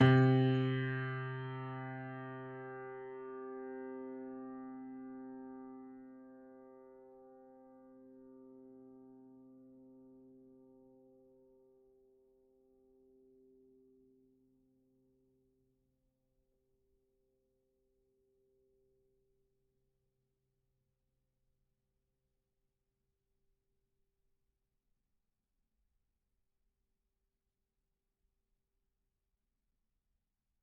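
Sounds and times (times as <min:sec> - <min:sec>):
Kawai grand piano C2 note sustained: 0:00.0 - 0:05.5.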